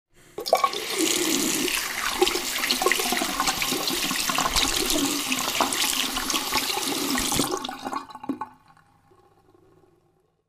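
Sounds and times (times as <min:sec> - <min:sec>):
washing hands: 0:00.4 - 0:07.9.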